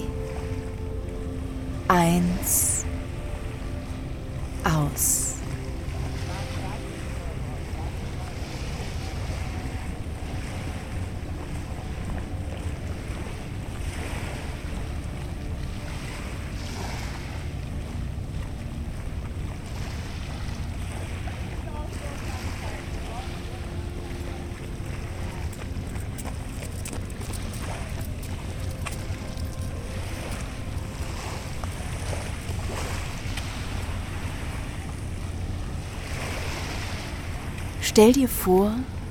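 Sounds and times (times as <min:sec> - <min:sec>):
ocean waves breaking against a rocky shore: 0:00.0 - 0:39.0
speech: 0:01.9 - 0:02.8, 0:05.0 - 0:05.3, 0:38.0 - 0:39.0.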